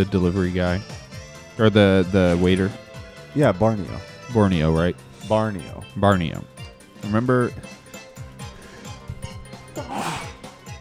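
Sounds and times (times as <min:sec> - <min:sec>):
speech: 0:00.0 - 0:01.0, 0:01.6 - 0:07.8
single sharp sneeze: 0:09.8 - 0:10.4.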